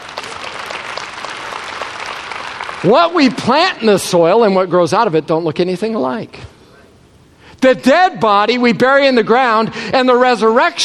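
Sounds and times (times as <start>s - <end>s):
congregation clapping during a worship service: 0.0s - 3.9s
speech: 2.8s - 6.5s, 7.6s - 10.8s.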